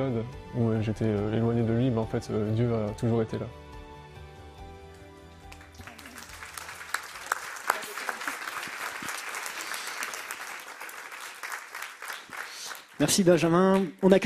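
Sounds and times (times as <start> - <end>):
speech: 0.0 - 3.6, 13.0 - 14.2
audience applause: 5.5 - 13.6.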